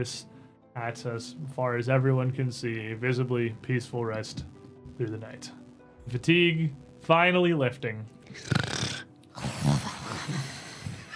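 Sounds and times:
speech: 0.0s - 8.7s
person imitating a snore: 8.3s - 11.0s.

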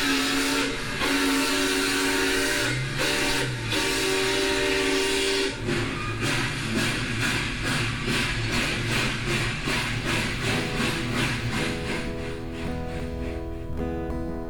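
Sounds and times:
train rolling with rhythmic clatter and hissing rumble: 0.1s - 14.3s.

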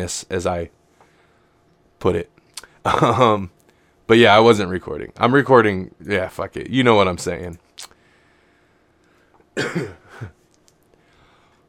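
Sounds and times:
speech: 0.0s - 0.8s, 2.0s - 8.0s, 9.6s - 10.4s
person coughing harshly: 2.9s - 3.5s, 9.6s - 10.4s
throat clearing: 9.6s - 10.4s.

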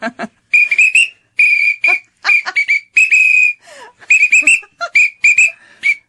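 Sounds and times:
emergency whistle blown playing a bouncy march-like tune: 0.5s - 6.0s.

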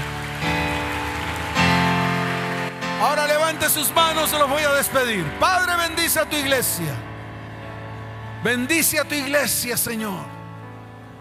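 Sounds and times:
audience applause in a dense steady wash of clapping: 0.0s - 5.1s
sustained keyboard chords: 0.0s - 11.1s
speech: 3.0s - 7.1s, 8.4s - 10.4s.

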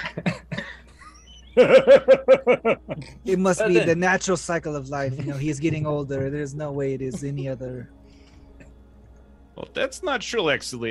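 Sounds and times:
person coughing: 0.0s - 0.9s
laughter: 0.0s - 7.8s
speech: 1.6s - 8.0s, 9.6s - 10.9s.

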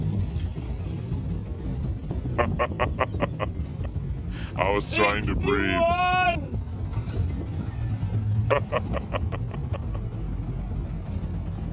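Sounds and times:
muscle car engine rumbling low on Treasure Island: 0.0s - 11.7s
laughter: 2.4s - 3.9s, 8.5s - 10.1s
speech: 2.6s - 3.7s, 4.6s - 6.4s, 8.5s - 9.2s.

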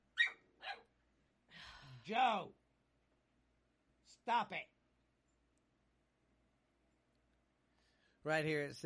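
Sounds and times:
dog barking: 0.2s - 0.9s
speech: 2.0s - 2.6s, 4.2s - 4.8s, 8.2s - 8.8s.

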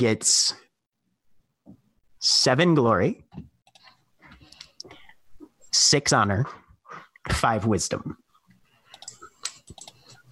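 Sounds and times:
speech: 0.0s - 0.6s, 2.2s - 3.5s, 5.7s - 6.6s, 7.2s - 8.2s
keyboard typing: 3.6s - 4.8s, 8.8s - 10.3s.

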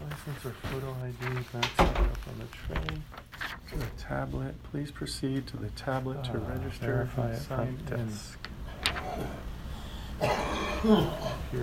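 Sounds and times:
speech: 0.3s - 8.5s, 9.2s - 9.5s, 10.2s - 11.6s
older man coughing through a mask: 10.2s - 11.5s.

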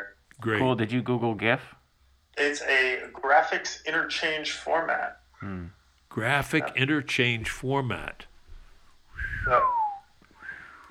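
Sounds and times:
speech: 0.4s - 1.8s, 2.4s - 8.3s, 9.4s - 9.8s
person whistling sliding note: 9.2s - 10.9s.

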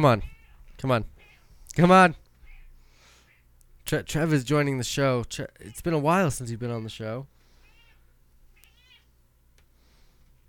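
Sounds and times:
speech: 0.0s - 1.2s, 1.8s - 2.2s, 3.9s - 7.4s
steady low hum: 0.0s - 10.4s
female cat meowing at a door: 0.2s - 1.5s, 2.4s - 3.5s, 7.6s - 9.1s.

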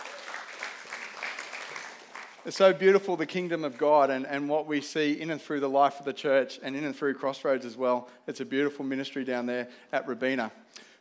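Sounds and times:
audience applauding volunteers at a church gathering: 0.0s - 2.8s
speech: 2.4s - 10.8s.

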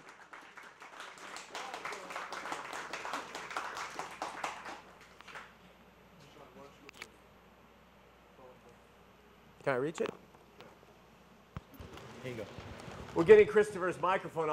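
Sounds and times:
audience applause: 0.0s - 5.5s
speech: 9.7s - 10.2s, 12.2s - 14.5s.

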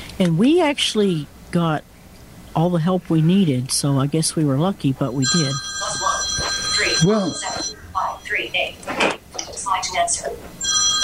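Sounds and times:
speech: 0.2s - 1.9s, 2.6s - 5.7s, 7.0s - 7.5s, 8.3s - 11.0s
telephone ringing with a high electronic tone: 5.1s - 8.8s, 9.6s - 11.0s.

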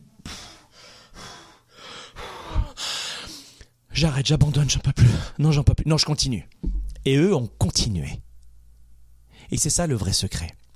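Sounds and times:
person panting heavily as if after running a marathon: 0.2s - 3.7s
speech: 4.0s - 8.3s, 9.5s - 10.6s.

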